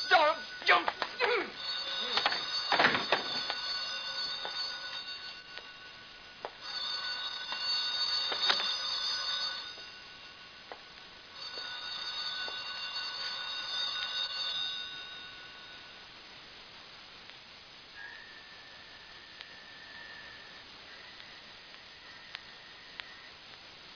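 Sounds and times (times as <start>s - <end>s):
old-fashioned telephone bell ringing: 0.0s - 16.1s.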